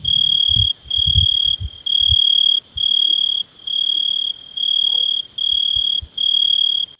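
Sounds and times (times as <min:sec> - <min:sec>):
Italian tree cricket chirping: 0:00.0 - 0:06.9.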